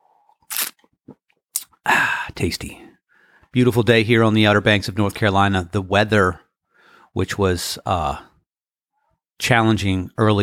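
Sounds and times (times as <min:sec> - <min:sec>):
person slurping coffee from a cup on the Outer Banks of North Carolina: 0:00.3 - 0:02.0
speech: 0:01.8 - 0:02.9, 0:03.6 - 0:06.4, 0:07.1 - 0:08.3, 0:09.4 - 0:10.4.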